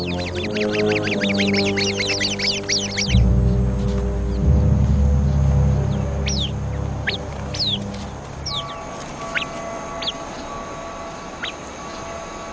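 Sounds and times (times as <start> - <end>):
sentry bird alarm calls warning of a viper: 0.0 - 4.4, 5.9 - 12.1
low steady rumble: 0.0 - 12.5
several birds chirping and calling: 0.0 - 12.5.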